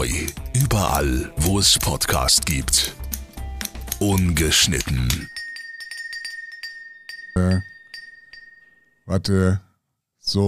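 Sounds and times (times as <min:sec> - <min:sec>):
speech: 0:00.0 - 0:03.0, 0:04.0 - 0:05.4, 0:07.4 - 0:07.7, 0:09.1 - 0:10.4
glass beer bottles clinking together in a toast: 0:04.0 - 0:09.0.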